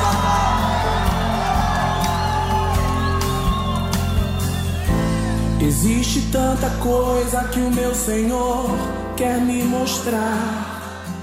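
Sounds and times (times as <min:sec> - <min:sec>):
large crowd shouting and whooping in worship: 0:00.0 - 0:05.9
speech: 0:05.7 - 0:10.7.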